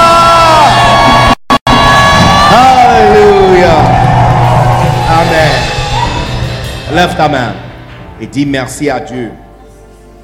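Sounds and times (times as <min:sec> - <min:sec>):
crowd yelling and cheering in jubilant cries: 0:00.0 - 0:07.8
speech: 0:07.0 - 0:07.6, 0:08.2 - 0:09.4.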